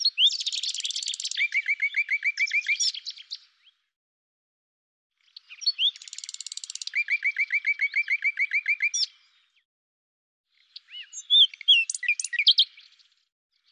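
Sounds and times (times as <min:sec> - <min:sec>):
Common nightingale singing buzzy trills and falling notes: 0:00.0 - 0:03.5, 0:05.3 - 0:09.3, 0:10.6 - 0:12.9.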